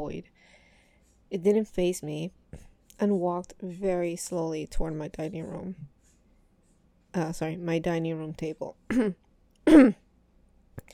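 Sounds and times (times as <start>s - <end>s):
speech: 0.0s - 0.6s, 1.3s - 5.9s, 7.1s - 10.0s
throat clearing: 8.9s - 10.0s.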